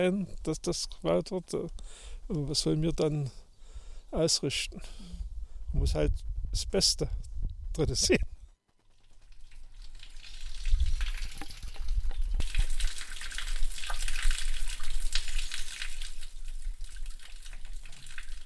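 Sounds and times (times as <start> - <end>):
speech: 0.0 - 3.4, 4.1 - 8.3
small brook below a village trickling on a very hot June day: 8.9 - 18.4.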